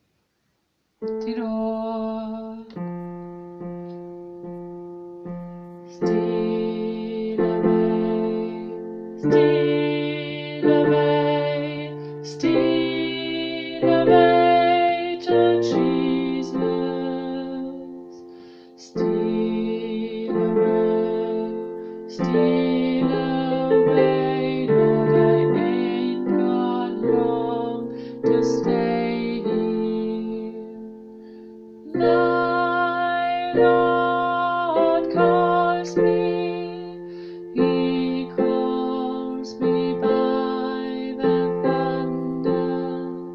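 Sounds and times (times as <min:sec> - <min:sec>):
tenor singing: 0:01.0 - 0:03.6, 0:05.3 - 0:43.3.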